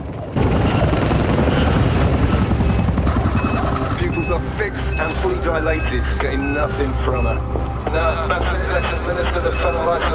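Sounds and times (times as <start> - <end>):
helicopter rotor blades chopping: 0.0 - 4.8
speech: 4.7 - 10.1.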